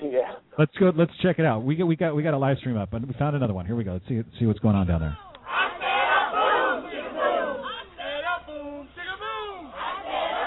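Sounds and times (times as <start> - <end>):
speech: 0.1 - 5.3
loud crowd cheering and shouting: 5.4 - 10.4.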